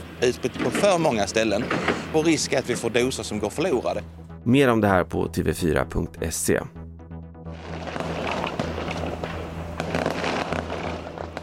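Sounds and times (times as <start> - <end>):
fireworks crackling and popping inside a burning fireworks shop in Ljungby struck by lightning: 0.0 - 3.0, 7.6 - 11.4
speech: 0.2 - 6.8.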